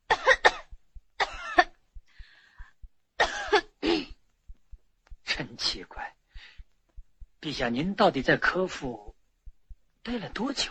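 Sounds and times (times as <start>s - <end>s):
brief soft hiss: 0.0s - 10.6s
faint low thumps: 0.0s - 10.6s
king coughing while a court physician listens to his back: 0.1s - 1.8s, 3.2s - 4.2s
speech: 5.6s - 6.6s, 7.4s - 9.1s, 10.0s - 10.6s.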